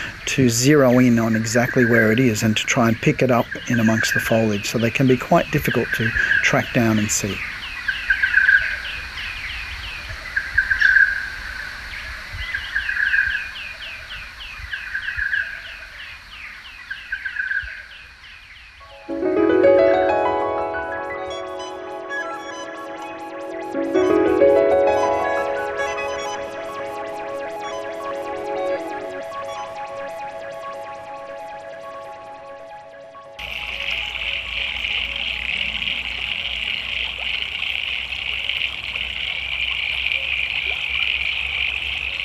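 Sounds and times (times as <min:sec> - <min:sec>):
frogs calling at a creek: 0:00.0 - 0:42.2
speech: 0:00.3 - 0:07.5
flowing creek water: 0:33.4 - 0:42.2.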